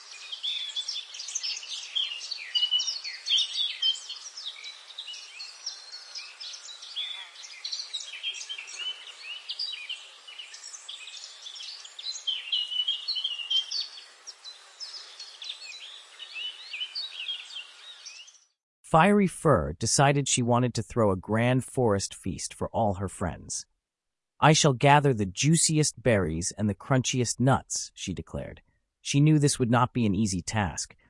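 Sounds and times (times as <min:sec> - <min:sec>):
birds chirping on a sunny morning: 0:00.0 - 0:18.5
speech: 0:18.9 - 0:23.7, 0:24.4 - 0:31.0.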